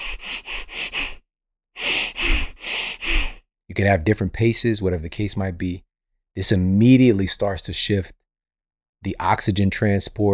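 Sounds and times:
rapid deep breath-of-fire breathing demonstration: 0.0s - 1.2s, 1.8s - 3.4s
speech: 3.8s - 8.2s, 9.0s - 10.3s.

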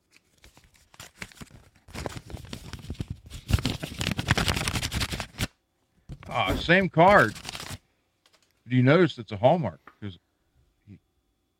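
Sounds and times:
letter envelope being torn open by hand: 0.1s - 5.5s, 7.0s - 7.8s
speech: 6.4s - 7.4s, 8.7s - 10.2s.

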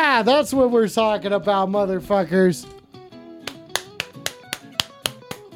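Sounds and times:
speech: 0.2s - 2.8s
audience clapping in a steady even beat: 3.4s - 5.5s.

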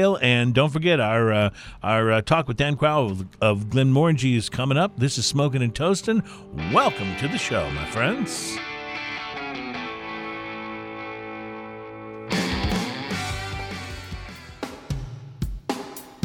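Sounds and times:
speech: 0.0s - 8.7s
sustained distorted guitar-like chords: 6.3s - 14.9s
full band playing: 6.6s - 15.1s.

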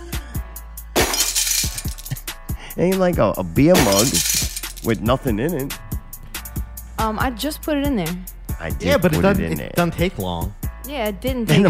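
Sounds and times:
glass fragments clattering: 1.0s - 2.2s, 3.8s - 4.9s
thin glass cracking and shattering: 1.0s - 2.2s, 3.8s - 4.9s
speech: 2.8s - 5.8s, 7.0s - 11.6s.

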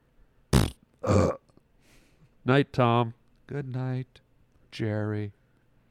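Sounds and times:
loud burps: 0.6s - 1.6s
speech: 1.0s - 1.4s, 2.4s - 5.4s.

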